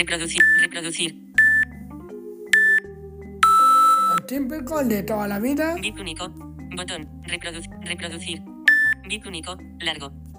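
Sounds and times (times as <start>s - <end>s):
speech: 0.0s - 1.2s, 4.3s - 10.2s
faint tone: 0.0s - 6.4s
sports timer app alert electronic beeps: 0.4s - 0.7s, 1.4s - 1.8s, 2.5s - 4.2s, 8.7s - 9.0s.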